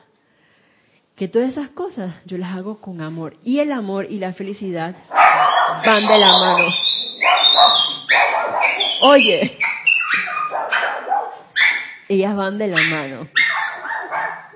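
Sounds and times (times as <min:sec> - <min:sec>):
speech: 0:01.2 - 0:06.9, 0:09.0 - 0:09.8, 0:12.1 - 0:13.4
small dogs barking and yapping: 0:05.1 - 0:12.1, 0:12.7 - 0:14.5.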